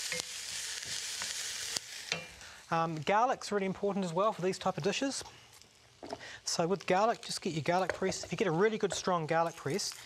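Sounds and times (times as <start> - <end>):
food frying and browning in a pan: 0.0 - 10.0
speech: 2.7 - 5.4, 6.5 - 10.0.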